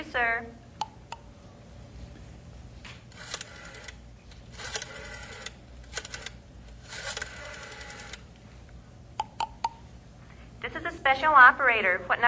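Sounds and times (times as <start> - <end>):
rotary telephone dialing clicks: 3.1 - 8.3
person speaking: 10.6 - 12.2.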